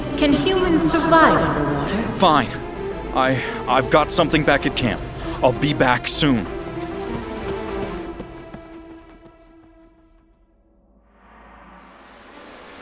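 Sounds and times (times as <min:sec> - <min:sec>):
speech: 0:00.2 - 0:06.6
water rushing in, flooding: 0:11.7 - 0:12.7.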